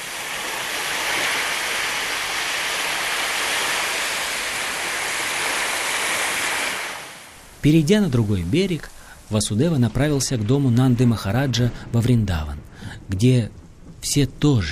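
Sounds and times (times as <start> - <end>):
churning foaming water of the Yamuna River with heavy surging waves: 0.0 - 11.5
pouring rainstorm: 0.0 - 14.7
speech: 7.6 - 14.7.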